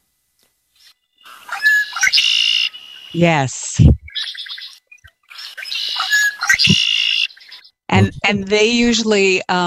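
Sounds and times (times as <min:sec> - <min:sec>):
red-winged blackbird singing buzzy gurgling trill: 0:01.2 - 0:03.2, 0:04.0 - 0:07.8
speech: 0:03.1 - 0:04.0, 0:08.3 - 0:09.6.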